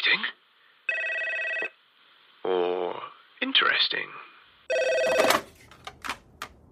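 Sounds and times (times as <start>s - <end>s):
speech: 0.1s - 0.4s, 2.5s - 4.3s
phone ringing: 0.9s - 1.8s, 4.7s - 5.6s.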